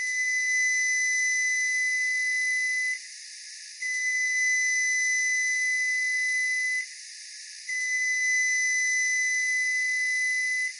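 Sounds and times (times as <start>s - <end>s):
long electronic beeps of a newer-model Frigidaire microwave oven: 0.0s - 3.0s, 3.8s - 6.9s, 7.6s - 10.7s.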